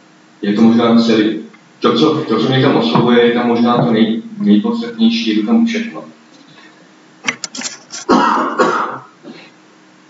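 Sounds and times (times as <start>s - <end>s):
speech: 0.4s - 6.2s
heavy rasping cough: 8.0s - 9.5s
person clearing throat: 8.0s - 9.5s.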